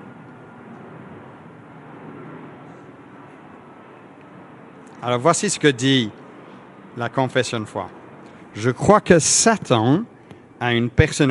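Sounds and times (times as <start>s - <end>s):
airplane passing overhead: 0.0s - 11.2s
speech: 5.0s - 6.2s, 7.0s - 11.2s.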